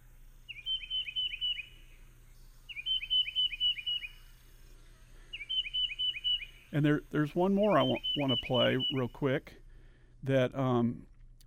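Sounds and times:
low steady hum: 0:00.0 - 0:11.4
tufted titmouse singing: 0:00.4 - 0:04.4, 0:05.3 - 0:09.2
speech: 0:06.7 - 0:09.6, 0:10.2 - 0:11.1.

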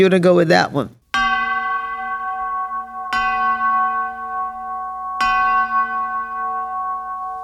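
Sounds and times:
speech: 0:00.0 - 0:01.0
bells ringing with bright metallic clangs: 0:01.2 - 0:07.4.

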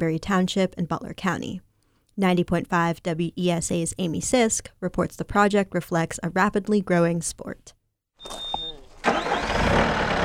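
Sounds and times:
speech: 0:00.0 - 0:08.5
skid steer loader engine starting and idling at a hilly park: 0:08.2 - 0:10.2.

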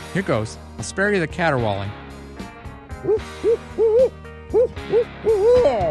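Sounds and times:
speech: 0:00.2 - 0:02.0, 0:03.0 - 0:05.8
owl hooting: 0:03.0 - 0:05.8.

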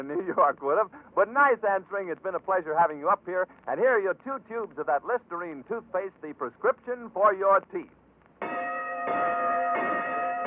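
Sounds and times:
speech: 0:00.0 - 0:09.3
bright bell clanging between quiz rounds: 0:08.4 - 0:10.4.

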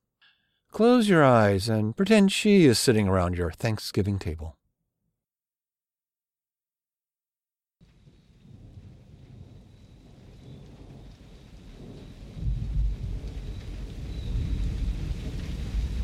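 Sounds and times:
speech: 0:00.8 - 0:04.6
low rolling thunder of an approaching thunderstorm: 0:07.8 - 0:16.0
steady hiss of rain: 0:07.8 - 0:16.0.

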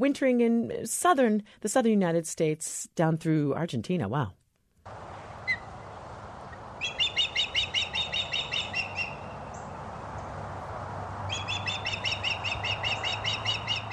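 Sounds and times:
speech: 0:00.0 - 0:05.1
osprey giving rapid high whistled chirps: 0:05.2 - 0:05.8, 0:06.4 - 0:10.3, 0:11.3 - 0:13.9.

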